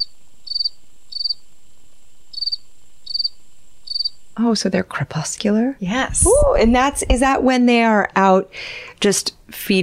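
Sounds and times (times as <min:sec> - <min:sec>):
cricket chirping in short high-pitched pulsed bursts: 0:00.0 - 0:04.4
faint continuous high whine: 0:00.0 - 0:07.6
speech: 0:04.4 - 0:09.8.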